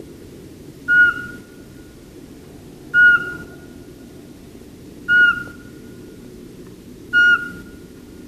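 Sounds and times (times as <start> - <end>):
low background rumble: 0.0 - 8.2
Eurasian Pygmy Owl whistled hoots: 0.9 - 1.5, 2.9 - 3.6, 5.1 - 5.7, 7.1 - 7.8.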